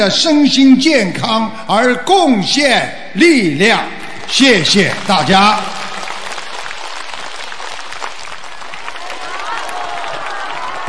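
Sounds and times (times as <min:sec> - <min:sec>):
speech: 0:00.0 - 0:05.7
large audience applauding after a talk on Buddhism: 0:04.0 - 0:10.8.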